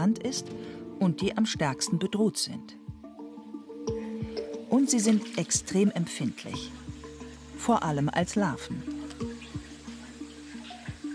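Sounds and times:
speech: 0.0 - 2.8, 4.7 - 6.9, 7.6 - 9.0
water trickling and splashing while changing an amphibian larvae tank: 3.8 - 11.1.

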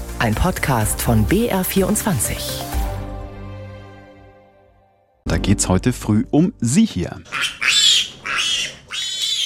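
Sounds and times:
speech: 0.2 - 2.8, 5.4 - 7.6
pig squealing and grunting: 7.2 - 9.4.

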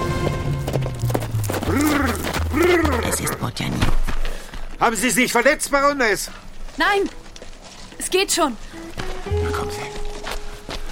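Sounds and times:
horse hooves as a rider turns back during a par force hunt: 0.0 - 10.9
speech: 0.2 - 0.5, 3.2 - 4.1, 4.8 - 7.2, 8.1 - 10.0.

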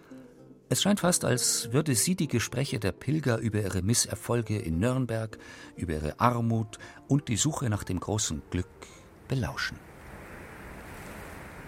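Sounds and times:
speech: 0.7 - 9.9
sharp wind blowing on a hilltop: 9.8 - 11.6.

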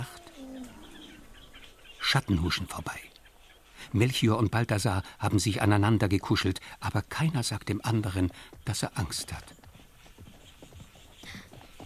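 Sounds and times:
hiss: 0.0 - 11.8
speech: 2.1 - 3.1, 3.9 - 9.6
camel and horse hoofbeats at a desert watering place: 7.1 - 11.8.

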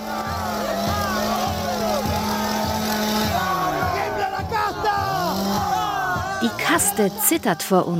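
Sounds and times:
chainsaw engine revving on stage at a political rally in Argentina: 0.0 - 7.9
dense crowd of supporters cheering, whooping and shouting: 0.0 - 7.9
speech: 6.4 - 7.9.

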